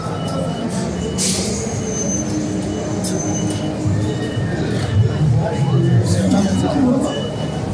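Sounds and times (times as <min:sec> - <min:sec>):
ghost train ride cars rumbling along rails: 0:00.0 - 0:07.7
metallic wheel squeals of ghost train ride cars: 0:00.0 - 0:07.7
murmur of voices at a busy fairground: 0:00.0 - 0:07.7.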